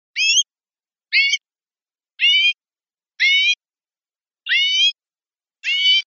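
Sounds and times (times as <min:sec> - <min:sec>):
greenfinch: 0:00.2 - 0:00.5, 0:01.2 - 0:01.4, 0:02.2 - 0:02.6, 0:03.2 - 0:03.6, 0:04.5 - 0:05.0, 0:05.6 - 0:06.0.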